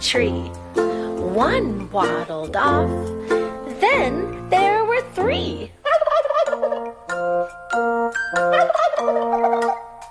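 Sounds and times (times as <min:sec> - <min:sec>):
speech: 0:00.1 - 0:05.8
turkeys gobbling: 0:05.8 - 0:07.4, 0:08.3 - 0:10.0.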